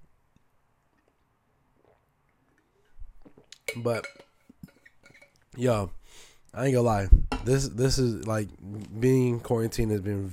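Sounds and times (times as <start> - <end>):
person drinking water: 0.8 - 3.8
speech: 3.7 - 4.3, 5.6 - 10.3.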